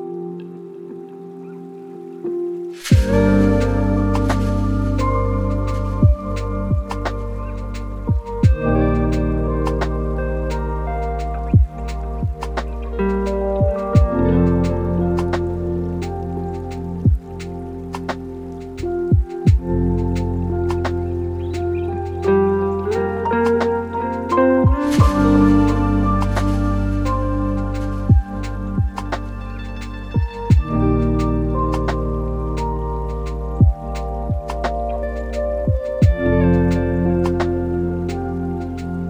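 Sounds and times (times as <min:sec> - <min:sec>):
lofi hip hop music: 0:02.3 - 0:39.0.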